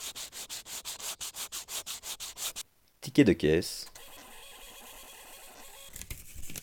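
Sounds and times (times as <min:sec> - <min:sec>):
sandpaper sheet rubbing back and forth: 0:00.0 - 0:02.6
speech: 0:03.1 - 0:03.9.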